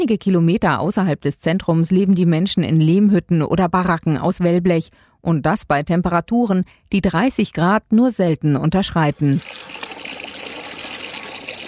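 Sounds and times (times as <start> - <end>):
speech: 0.0 - 10.2
water gushing from a water pump on a large school ground: 9.2 - 11.6.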